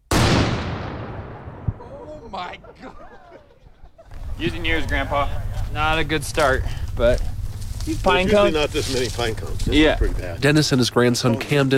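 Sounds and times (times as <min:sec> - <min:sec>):
mini cannon blast for a shotgun-start golf tournament: 0:00.0 - 0:02.5
laughter: 0:01.8 - 0:06.2
speech: 0:02.3 - 0:03.5, 0:04.4 - 0:07.3, 0:07.9 - 0:11.7.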